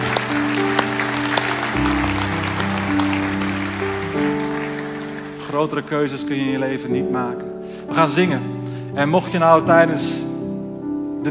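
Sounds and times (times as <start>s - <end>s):
audience applause: 0.0s - 6.4s
sustained keyboard chords: 0.0s - 11.2s
speech: 5.6s - 10.2s.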